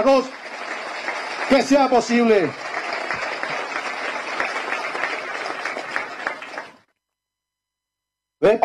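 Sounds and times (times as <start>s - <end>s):
speech: 0.0s - 0.4s, 1.5s - 2.6s, 8.4s - 8.6s
crowd applauding a speaker: 0.0s - 6.9s.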